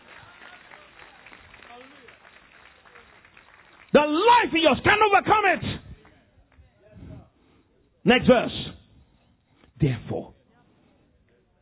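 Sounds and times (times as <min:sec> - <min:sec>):
audience applause: 0:00.0 - 0:04.2
speech: 0:03.9 - 0:05.8, 0:08.0 - 0:08.6.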